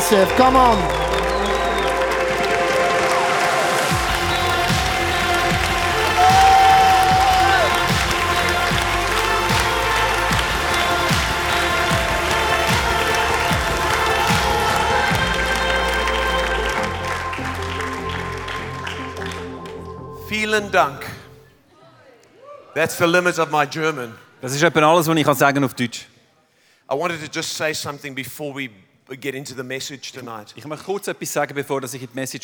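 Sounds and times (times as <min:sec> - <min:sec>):
large crowd applauding in a standing ovation: 0:00.0 - 0:20.2
speech: 0:00.1 - 0:01.0, 0:20.3 - 0:21.0, 0:22.8 - 0:26.0, 0:26.9 - 0:32.4
brief whistle: 0:00.3 - 0:08.6.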